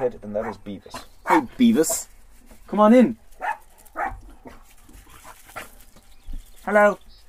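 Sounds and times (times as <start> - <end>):
dog giving short yappy barks: 0.0 - 1.5, 3.4 - 4.6
speech: 0.0 - 3.2, 6.7 - 7.0.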